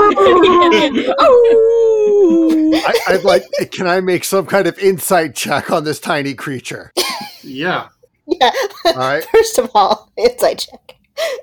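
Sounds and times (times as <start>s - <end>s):
laughter: 0.0s - 1.8s, 2.5s - 3.8s
voice imitating dogs howling: 0.0s - 3.0s
speech: 0.2s - 1.9s, 2.9s - 11.4s.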